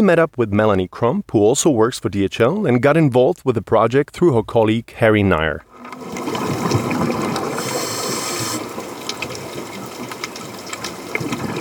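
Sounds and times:
speech: 0:00.0 - 0:06.8
underwater bubbling: 0:05.7 - 0:11.5.

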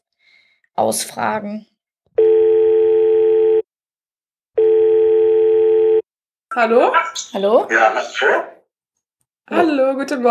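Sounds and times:
speech: 0:00.8 - 0:01.7, 0:06.6 - 0:08.6, 0:09.5 - 0:10.2
Skype call ringing tone: 0:02.2 - 0:03.7, 0:04.6 - 0:06.0.

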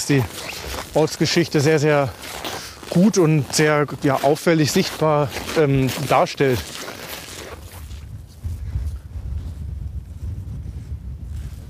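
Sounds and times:
speech: 0:00.1 - 0:02.2, 0:02.9 - 0:06.7
strong wind whistling across a microphone outdoors at a large listed building: 0:07.4 - 0:11.6.

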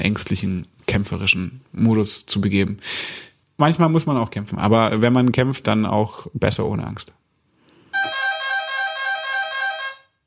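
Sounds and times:
speech: 0:00.0 - 0:07.2
kitchen egg timer buzzing ring: 0:08.0 - 0:10.1.

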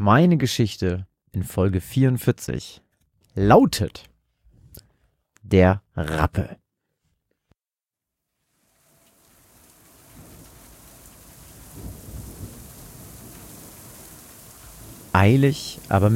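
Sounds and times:
speech: 0:00.0 - 0:02.8, 0:03.4 - 0:04.1, 0:05.4 - 0:06.6, 0:15.2 - 0:16.1
steady heavy rain: 0:08.5 - 0:16.1
deep rolling thunder: 0:09.5 - 0:16.1.

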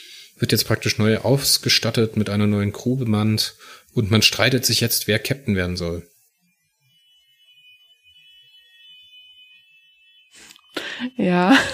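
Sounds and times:
speech: 0:00.0 - 0:06.1, 0:11.2 - 0:11.7
shrill electronic fire engine siren passing outside: 0:04.8 - 0:11.7.

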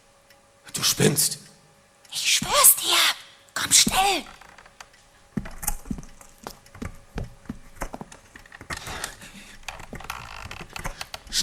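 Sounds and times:
speech: 0:00.8 - 0:01.5, 0:03.7 - 0:04.4
knocks, clicks and rattles of a wooden door being tried: 0:03.9 - 0:11.4.

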